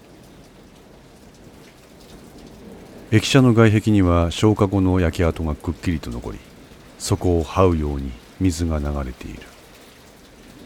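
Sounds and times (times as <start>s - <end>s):
steady dense rain pattering on hard surfaces: 0.0s - 10.6s
speech: 3.1s - 9.5s.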